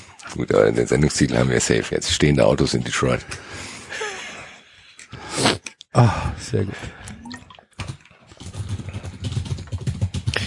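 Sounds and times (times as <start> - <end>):
speech: 0.4 - 4.0, 6.0 - 7.0
rapid typing on a computer keyboard: 7.8 - 10.4.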